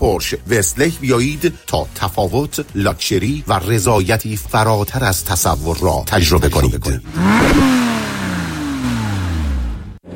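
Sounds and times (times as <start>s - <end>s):
speech: 0.2s - 7.9s
car engine revving hard and accelerating through gear changes: 7.0s - 10.1s.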